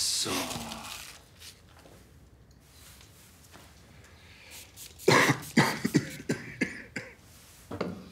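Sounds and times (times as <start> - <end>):
speech: 0.2 - 0.8
person coughing in a harsh fit: 5.0 - 7.2.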